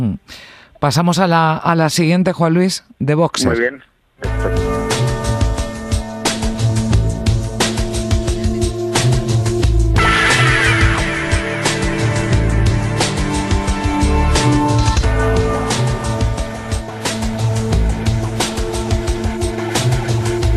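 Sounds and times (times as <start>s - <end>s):
speech: 0.0s - 4.8s
instrumental film score: 3.4s - 20.5s.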